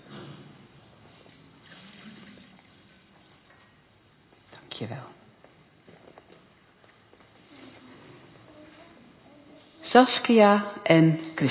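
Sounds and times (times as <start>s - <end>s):
water poured into a baptismal font at a baptism: 1.1s - 3.2s
speech: 4.8s - 5.2s, 9.9s - 11.4s.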